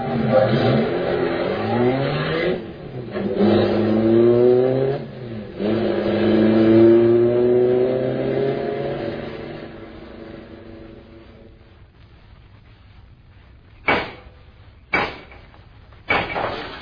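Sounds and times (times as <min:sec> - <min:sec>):
car engine revving and accelerating through gear shifts: 0:00.0 - 0:11.8.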